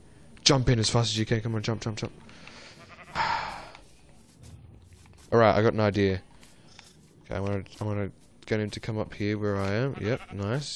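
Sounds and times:
speech: 0:00.5 - 0:02.6, 0:05.3 - 0:06.3, 0:07.3 - 0:10.7
video game sheep bleat: 0:02.6 - 0:03.8, 0:09.8 - 0:10.6.

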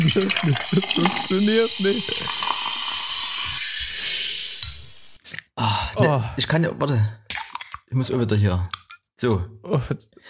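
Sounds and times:
speech: 0:00.1 - 0:02.4, 0:06.0 - 0:07.2, 0:07.9 - 0:10.2
Erzquell Siegerländer premium pilsner beer bottle opening hiss: 0:00.6 - 0:05.2.

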